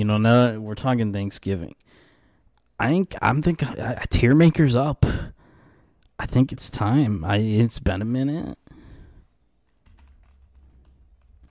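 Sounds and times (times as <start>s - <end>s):
speech: 0.0s - 1.8s, 2.8s - 5.4s, 6.2s - 8.6s
typing on a computer keyboard: 9.6s - 11.5s.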